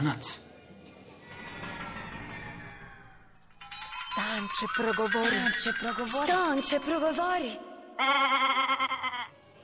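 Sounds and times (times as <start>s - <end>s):
speech: 0.0s - 0.5s, 4.4s - 8.8s
goat bleating: 8.0s - 9.3s.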